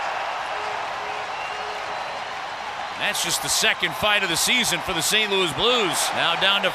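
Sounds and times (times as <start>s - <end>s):
sellout hockey arena crowd cheering in a dense roar: 0.0s - 6.7s
speech: 3.0s - 6.7s.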